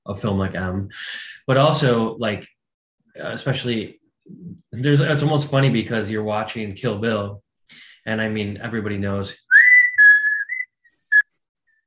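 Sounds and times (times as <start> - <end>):
speech: 0.1 - 2.6, 3.2 - 9.4
whistled melody from a film soundtrack: 9.5 - 11.8.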